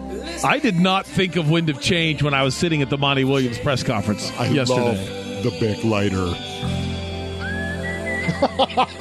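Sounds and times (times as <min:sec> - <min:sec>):
speech: 0:00.4 - 0:06.8, 0:08.4 - 0:08.9
laughter: 0:04.4 - 0:05.1, 0:08.2 - 0:08.9
person whistling a tune from a rock song intro: 0:07.4 - 0:08.5.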